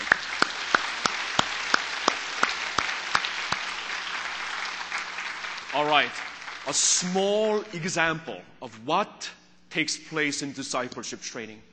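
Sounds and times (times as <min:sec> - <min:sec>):
audience applause of thanks: 0:00.0 - 0:07.4
speech: 0:05.8 - 0:11.7.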